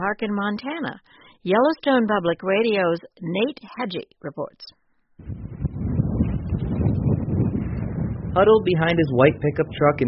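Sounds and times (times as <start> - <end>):
speech: 0.0 - 5.5, 8.4 - 10.0
wind blowing hard outdoors in northwestern Montana: 5.2 - 10.0.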